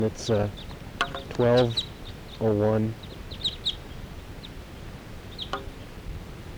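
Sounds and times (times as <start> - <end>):
speech: 0.0 - 3.0
flock of crossbills calling in the sky: 0.0 - 6.5
hiss: 0.0 - 6.5.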